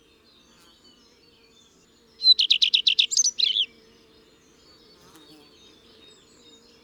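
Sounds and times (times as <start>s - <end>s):
common redstart singing: 2.2s - 3.7s.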